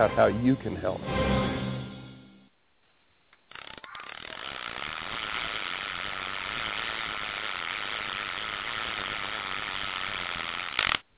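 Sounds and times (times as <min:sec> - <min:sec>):
speech: 0:00.0 - 0:01.4
fishing reel drag screaming with a buzzing whir: 0:03.5 - 0:11.0.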